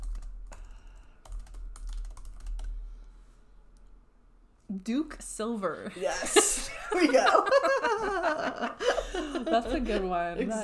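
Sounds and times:
typing on a computer keyboard: 0:00.0 - 0:02.8
speech: 0:04.7 - 0:10.6
laughter: 0:06.2 - 0:10.6.

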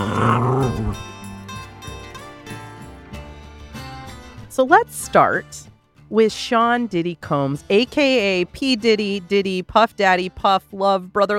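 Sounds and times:
hungry dog growling: 0:00.0 - 0:01.2
speech: 0:04.6 - 0:11.3.

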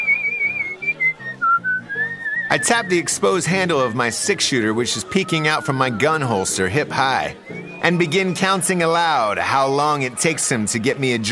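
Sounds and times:
person whistling a show tune: 0:00.0 - 0:08.8
speech: 0:02.5 - 0:11.3.

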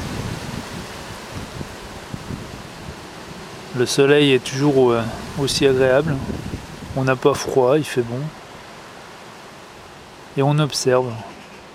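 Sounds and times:
strong wind roaring outdoors on a mountain: 0:00.0 - 0:07.8
speech: 0:03.8 - 0:08.4, 0:10.4 - 0:11.4.

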